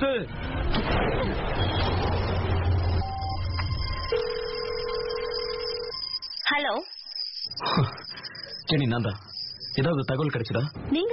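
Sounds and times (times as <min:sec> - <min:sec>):
speech: 0:00.0 - 0:01.8, 0:06.6 - 0:06.9, 0:08.7 - 0:11.1
rumbling noise in a vehicle: 0:00.3 - 0:04.1
longer steady lower telephone tone as a call is placed: 0:03.0 - 0:10.6.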